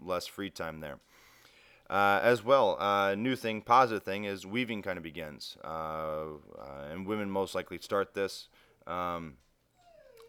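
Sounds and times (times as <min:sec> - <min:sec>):
speech: 0:00.1 - 0:01.2, 0:01.9 - 0:09.4
dog whining to go outside: 0:09.7 - 0:10.2.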